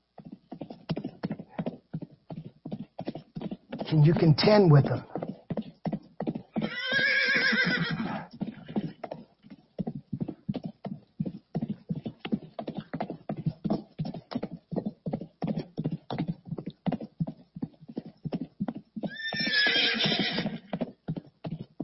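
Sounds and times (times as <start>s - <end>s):
horse hooves clip-clopping: 0.0s - 21.8s
speech: 3.9s - 5.1s
horse whinnying loudly: 6.5s - 9.0s, 19.0s - 20.8s.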